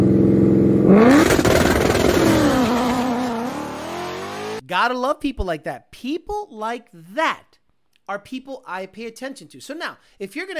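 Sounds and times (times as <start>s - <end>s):
stick-shift drag car with ESS setup and 100 millimeter pulley launching off two-step: 0.0s - 4.6s
speech: 4.7s - 7.5s, 8.1s - 10.5s.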